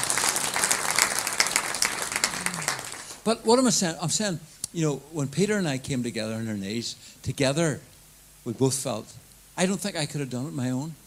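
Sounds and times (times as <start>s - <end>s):
audience applause: 0.0s - 3.2s
speech: 3.2s - 11.0s.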